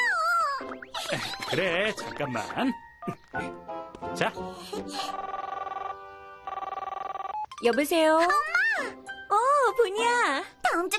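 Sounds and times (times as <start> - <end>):
speech: 0.6 - 5.3, 7.6 - 10.9
telephone ringing with warbling electronic ring tone: 5.0 - 7.8.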